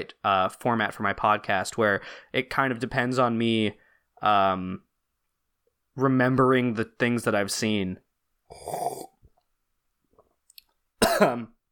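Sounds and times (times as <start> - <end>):
speech: 0.0 - 4.9, 6.0 - 9.1, 11.2 - 11.5
breaths: 2.0 - 2.4, 3.8 - 4.2
person coughing after choking on coffee: 8.5 - 9.1, 11.0 - 11.6.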